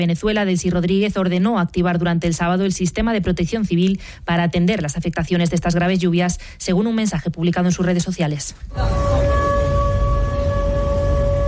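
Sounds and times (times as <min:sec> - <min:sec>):
speech: 0:00.0 - 0:09.3
air raid sirens at night in Krasnodar during a drone attack: 0:08.7 - 0:11.4.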